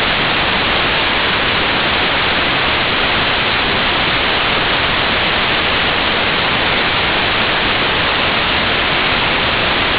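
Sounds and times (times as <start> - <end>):
white noise: 0.0 - 9.9.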